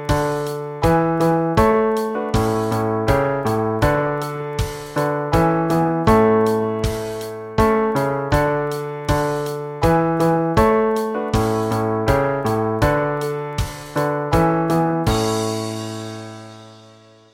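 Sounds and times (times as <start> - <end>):
bass drums: 0.1 - 16.8.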